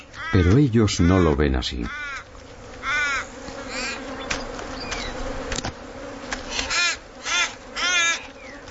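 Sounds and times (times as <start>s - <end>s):
ravens cawing in protest at a young eagle feeding: 0.0s - 4.2s, 6.5s - 8.6s
noisy outdoor background: 0.0s - 8.6s
speech: 0.3s - 2.2s.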